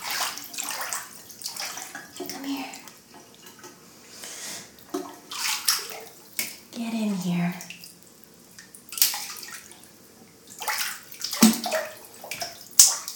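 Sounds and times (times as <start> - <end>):
water sloshing and splashing in a bathtub: 0.0 - 13.1
speech: 6.8 - 7.7.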